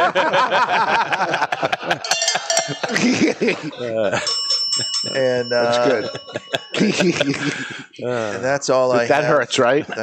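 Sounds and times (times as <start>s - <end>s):
several people laughing: 0.0s - 10.0s
speech: 0.1s - 10.0s
metallic cowbell clanging: 2.0s - 7.6s.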